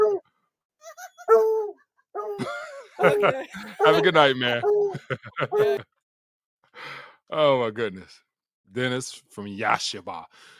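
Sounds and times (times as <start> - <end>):
hound dog howling: 0.0 - 0.2, 1.2 - 2.4, 3.0 - 5.8
speech: 2.2 - 5.9, 6.8 - 10.5
laughter: 2.4 - 5.8.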